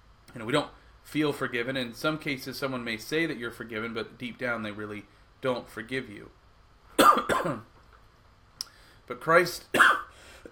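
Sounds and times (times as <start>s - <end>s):
speech: 0.4s - 6.4s, 7.1s - 7.7s, 9.1s - 10.0s
person coughing harshly: 7.0s - 7.7s, 9.8s - 10.5s.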